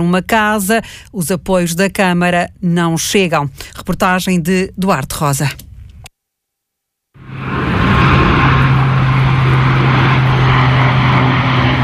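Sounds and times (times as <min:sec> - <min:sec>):
speech: 0:00.0 - 0:05.7
airplane engine roar passing overhead over a residential neighbourhood in Loures: 0:07.2 - 0:11.8.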